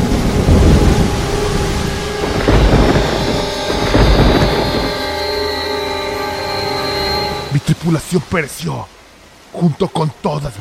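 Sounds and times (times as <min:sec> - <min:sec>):
deep rolling thunder: 0:00.0 - 0:07.5
heavy steady rain: 0:00.0 - 0:10.5
speech: 0:07.9 - 0:10.5.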